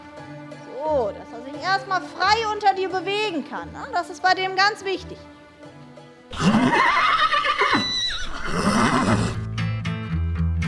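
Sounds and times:
speech: 0.8s - 5.3s, 6.7s - 7.3s
cantering horse whinnying: 6.3s - 9.5s.

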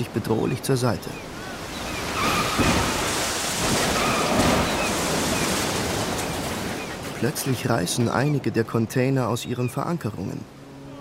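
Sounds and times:
speech: 0.0s - 1.3s, 2.6s - 2.9s, 7.2s - 10.6s
storm waves crashing onto container ship deck in the North Pacific: 1.4s - 7.8s.

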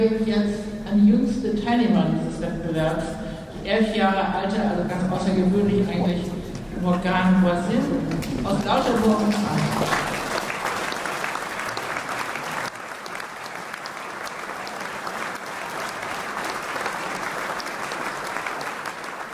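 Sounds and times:
speech: 0.0s - 10.2s
audience applauding for young violin prizewinner: 8.2s - 19.3s.

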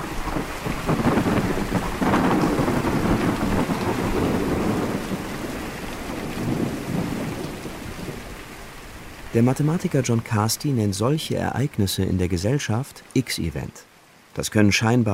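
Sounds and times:
deep rolling thunder: 0.0s - 8.4s
steady heavy rain in a thunderstorm: 0.0s - 15.1s
speech: 9.4s - 15.1s.

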